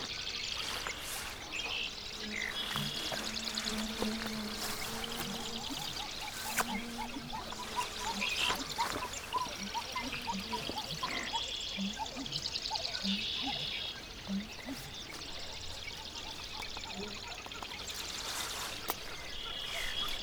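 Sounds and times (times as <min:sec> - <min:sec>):
wetland bird calling: 0:00.0 - 0:20.2.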